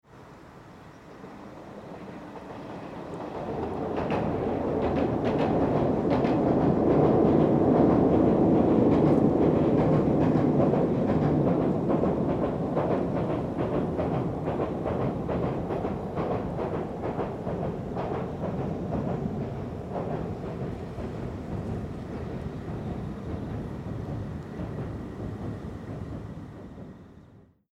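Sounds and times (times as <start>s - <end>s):
train by the Chikugo river: 0.0s - 27.6s.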